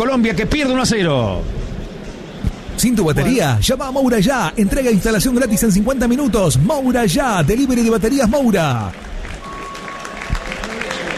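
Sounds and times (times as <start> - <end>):
speech: 0.1 - 1.7, 2.8 - 9.1
crowd applauding a football player being substituted at a professional football match: 7.4 - 11.1.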